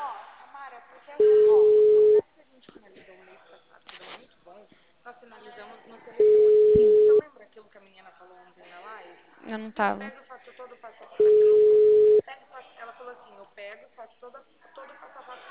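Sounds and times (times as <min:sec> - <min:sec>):
telephone busy signal beeps: 0:01.2 - 0:02.2, 0:06.2 - 0:07.2, 0:11.2 - 0:12.2
speech: 0:09.5 - 0:10.2.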